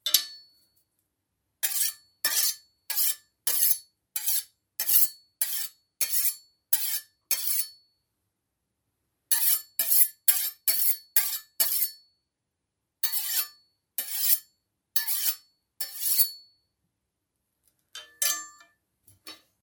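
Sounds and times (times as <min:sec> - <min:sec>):
knife scraping against knife: 0:01.6 - 0:07.8, 0:09.3 - 0:12.0, 0:13.0 - 0:16.4, 0:18.0 - 0:18.6.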